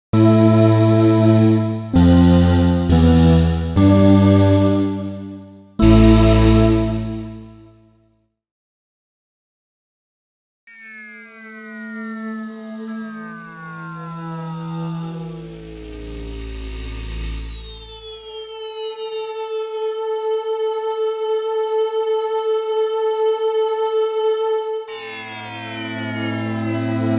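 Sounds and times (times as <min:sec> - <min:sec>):
synthesizer choir sound, raw and with ring modulation: 0:00.1 - 0:07.7, 0:17.8 - 0:27.1.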